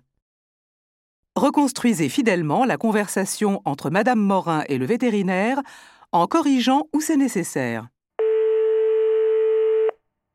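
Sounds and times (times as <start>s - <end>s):
speech: 1.4s - 8.0s
telephone dial tone before a call: 8.2s - 10.0s.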